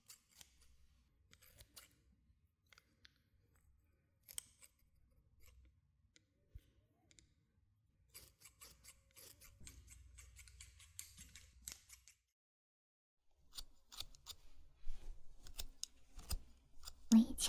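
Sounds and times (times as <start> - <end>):
scissors snipping damp hair bangs: 0.0 - 0.7, 4.2 - 4.8, 8.2 - 12.2, 13.5 - 17.4.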